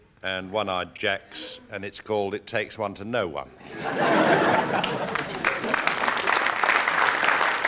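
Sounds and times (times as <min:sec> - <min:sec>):
speech: 0:00.2 - 0:05.2
laughter: 0:03.6 - 0:06.2
audience applause: 0:04.3 - 0:07.6.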